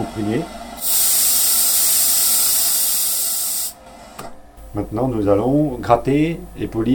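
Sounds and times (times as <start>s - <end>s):
speech: 0.0s - 1.0s, 4.7s - 6.9s
sandblaster spraying sand with compressed air: 0.8s - 3.8s.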